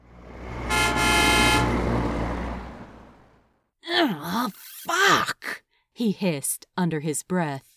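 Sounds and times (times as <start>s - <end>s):
low traffic rumble: 0.0s - 3.5s
loud car horn blaring: 0.6s - 1.9s
person sighing or muttering: 3.8s - 5.6s
speech: 4.0s - 5.3s, 6.0s - 7.7s.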